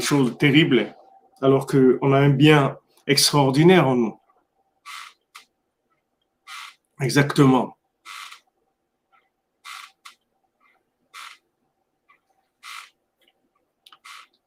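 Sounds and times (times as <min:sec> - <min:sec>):
speech: 0:00.0 - 0:04.2, 0:07.0 - 0:07.8
armchair creaking and squeaking: 0:04.8 - 0:05.5, 0:06.4 - 0:06.9, 0:08.0 - 0:08.5, 0:09.1 - 0:11.5, 0:12.1 - 0:14.4.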